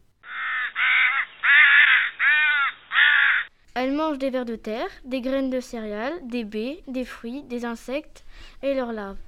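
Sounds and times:
crow cawing: 0:00.2 - 0:03.5
speech: 0:03.8 - 0:09.2.

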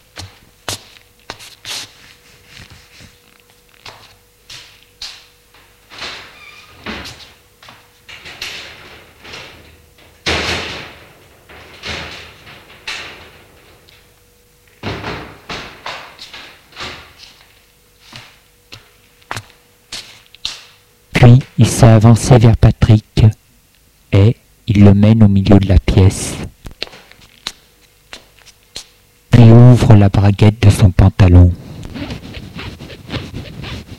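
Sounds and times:
faint steady hum: 0:00.0 - 0:33.9
speech: 0:21.3 - 0:23.4, 0:24.1 - 0:26.4, 0:29.9 - 0:31.6
curtains being drawn open in a bedroom: 0:31.6 - 0:33.9.

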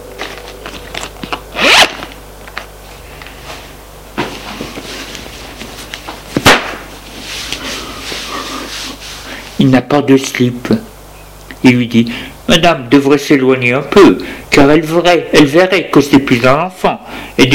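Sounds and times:
trouser zipper being undone: 0:00.7 - 0:02.2
speech: 0:09.6 - 0:10.8, 0:11.6 - 0:17.5.

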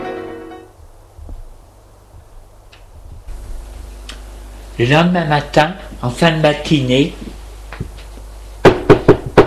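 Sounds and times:
speech: 0:04.8 - 0:07.3
knocking on a bedroom door: 0:08.6 - 0:09.4.

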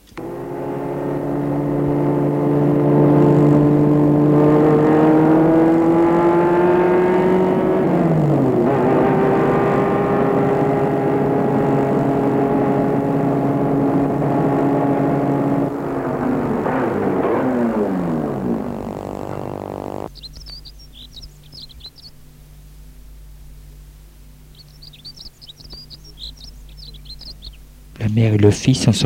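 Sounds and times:
car engine humming at a chalet hotel in a forest: 0:00.0 - 0:28.4
speech: 0:28.7 - 0:29.0.

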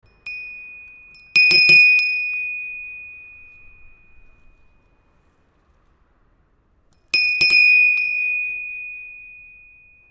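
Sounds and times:
small homemade bell struck: 0:00.0 - 0:05.3, 0:07.1 - 0:10.1.

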